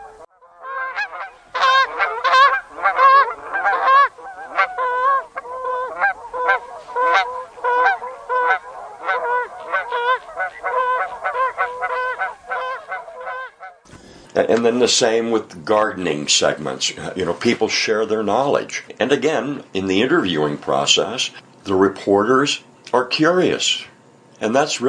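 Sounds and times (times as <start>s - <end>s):
flock of Canada geese honking in V formation flight: 0.0s - 13.9s
speech: 14.5s - 24.8s.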